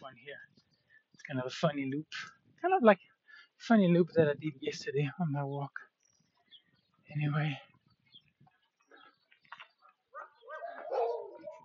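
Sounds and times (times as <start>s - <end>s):
speech: 1.3s - 5.9s, 7.1s - 7.7s
dog yapping and yelping: 9.8s - 11.6s.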